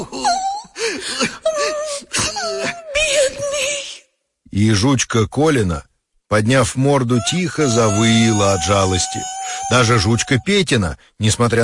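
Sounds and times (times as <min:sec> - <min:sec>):
person sobbing and wailing with catches of breath: 0:00.0 - 0:03.8, 0:07.2 - 0:10.6
speech: 0:04.6 - 0:11.6.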